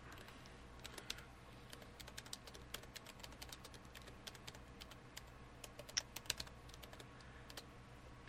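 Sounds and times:
typing on a computer keyboard: 0.1s - 7.7s.

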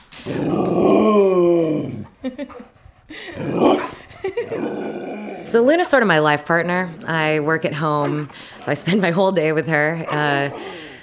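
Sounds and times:
speech: 0.2s - 0.9s, 2.2s - 3.6s, 5.5s - 10.8s
90-pound Border Collie Great Pyrenees mix dog grumbling at home in Brooklyn: 0.2s - 2.2s, 3.3s - 5.7s.

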